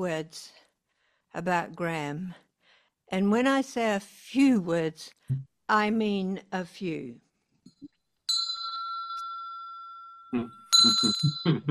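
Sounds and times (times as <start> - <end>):
speech: 0.0 - 0.6, 1.3 - 2.4, 3.1 - 7.2, 10.3 - 11.6
small hand bell ringing: 8.3 - 11.6.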